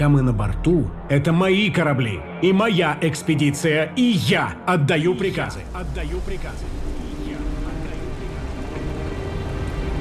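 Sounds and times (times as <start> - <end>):
speech: 0.0 - 7.0
heavy rain in a storm at sea near Brazil: 5.2 - 10.0.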